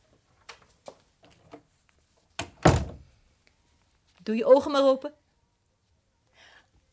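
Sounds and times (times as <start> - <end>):
door swinging shut with a solid thump: 2.4 - 3.1
speech: 4.2 - 5.2.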